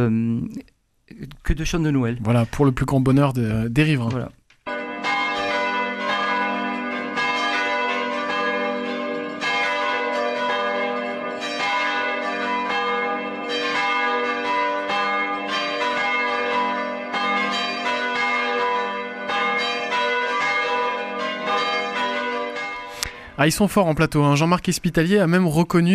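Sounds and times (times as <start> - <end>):
speech: 0.0 - 4.4, 23.4 - 25.9
several church bells pealing together: 4.7 - 24.6.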